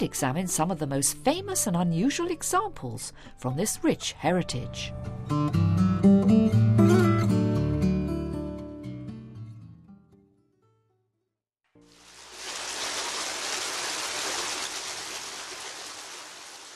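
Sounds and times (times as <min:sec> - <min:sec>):
speech: 0:00.0 - 0:07.0
soft music: 0:00.0 - 0:09.3
water flowing from a fountain in Rome: 0:11.8 - 0:16.7.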